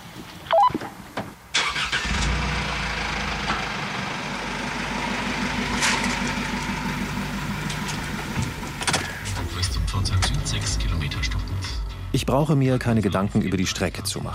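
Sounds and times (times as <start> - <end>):
car engine cranking and catching: 1.5 - 12.3
speech: 12.1 - 14.3.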